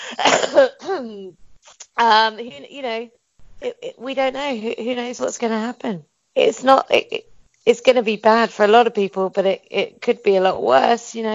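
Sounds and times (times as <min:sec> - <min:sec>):
rough raspy smoker's cough: 0:00.0 - 0:01.6
speech: 0:00.1 - 0:11.3.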